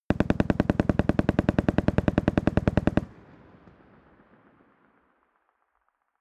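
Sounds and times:
distant AK-47 rifle automatic fire outdoors: 0.1 - 5.0.

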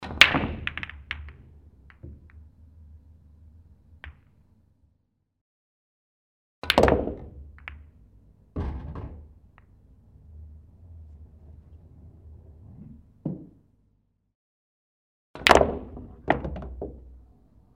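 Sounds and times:
billiard shots: 0.1 - 2.4, 6.7 - 8.0, 15.5 - 17.2.

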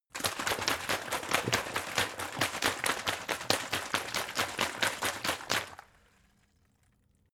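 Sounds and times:
big water bottle shaking: 0.1 - 5.9.

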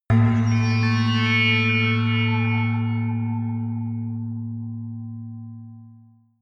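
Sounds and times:
high whistle synth: 0.2 - 4.1.

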